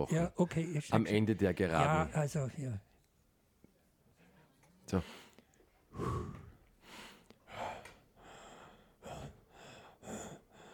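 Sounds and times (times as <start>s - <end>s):
speech: 0.0s - 2.9s, 4.9s - 5.2s
heavy puffing breaths of a person about to get on a bicycle: 5.9s - 10.7s.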